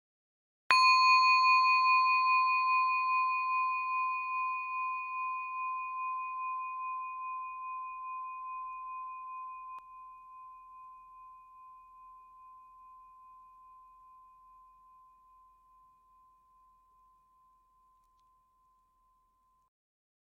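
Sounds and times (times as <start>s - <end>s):
meditation bell ringing with clear pure tone: 0.7s - 19.7s.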